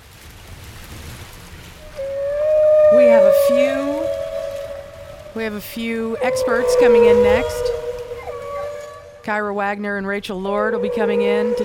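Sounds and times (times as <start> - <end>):
whale long tonal moan: 1.8 - 9.4, 10.3 - 11.6
speech: 5.4 - 7.8, 9.2 - 11.6.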